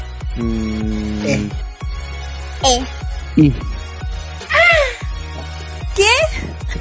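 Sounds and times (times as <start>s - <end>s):
person imitating turtle with squeaky cawing cries: 0.4s - 1.5s
speech: 0.4s - 1.7s, 2.6s - 3.8s, 6.0s - 6.5s.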